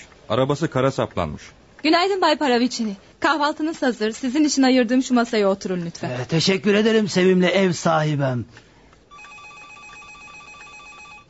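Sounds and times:
speech: 0:00.3 - 0:08.6
telephone ringing in the hall of a country guest house: 0:09.1 - 0:11.2.

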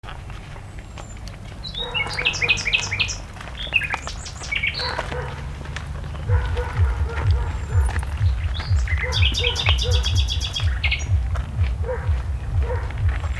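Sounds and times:
common nightingale singing at a farmstead in Arluno, Milan, Italy: 0:00.1 - 0:13.3
steady low rumble: 0:05.0 - 0:13.3.

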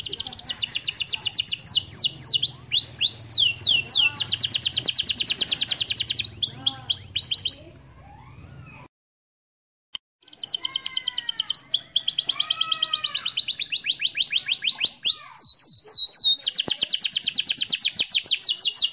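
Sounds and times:
canary singing master song with rolling trills: 0:00.0 - 0:08.9, 0:10.2 - 0:18.9.

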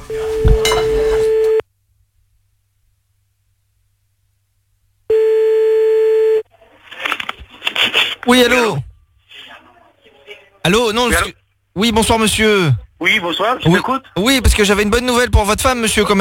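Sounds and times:
telephone line ringing tone while calling back: 0:00.1 - 0:01.6, 0:05.1 - 0:06.4
speech: 0:08.3 - 0:08.9, 0:10.6 - 0:16.1.

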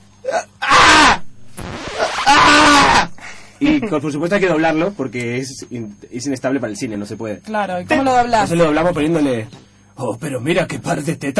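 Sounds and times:
man's long, loud, strained wailing moans: 0:00.2 - 0:01.2, 0:02.2 - 0:03.3
man's voice imitating a man screaming during sex: 0:00.2 - 0:01.2, 0:02.0 - 0:03.2
speech: 0:03.6 - 0:11.3.

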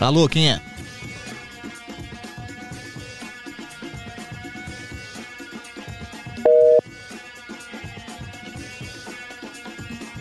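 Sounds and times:
telephone busy tone after a call is hung up: 0:06.5 - 0:06.8.

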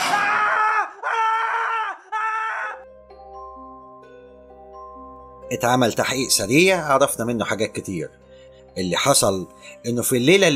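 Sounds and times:
man screaming: 0:00.0 - 0:02.8
speech: 0:05.5 - 0:08.2, 0:08.8 - 0:10.5.

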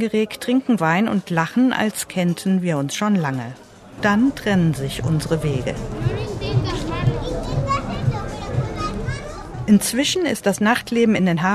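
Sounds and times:
speech: 0:00.0 - 0:06.3, 0:09.7 - 0:11.5
children playing between restaurant tables in harbor lanes at night: 0:03.7 - 0:10.2.

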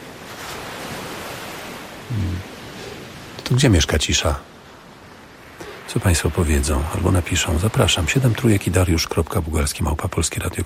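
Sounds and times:
waves of the Sea of Japan washing in: 0:00.0 - 0:10.6
speech: 0:02.1 - 0:02.5, 0:03.5 - 0:04.5, 0:06.0 - 0:10.6.

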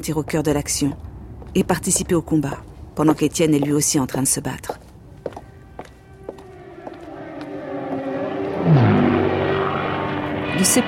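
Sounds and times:
speech: 0:00.0 - 0:04.9, 0:10.6 - 0:10.8
Luftwaffe bomber aircraft engines droning over England during 1940–41 bombing raids: 0:05.4 - 0:10.8.

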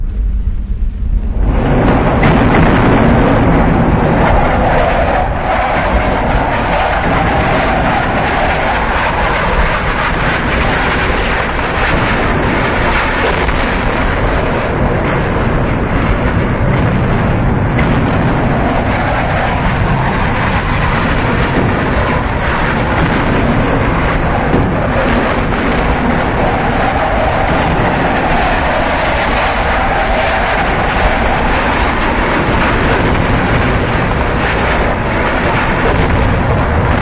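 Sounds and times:
harsh power electronics noise track depicting an airplane bombing run: 0:00.0 - 0:36.9.

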